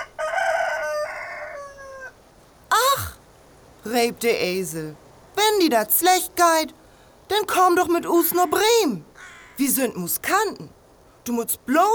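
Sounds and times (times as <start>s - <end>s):
old rooster crowing: 0.0s - 2.2s
speech: 3.8s - 11.9s.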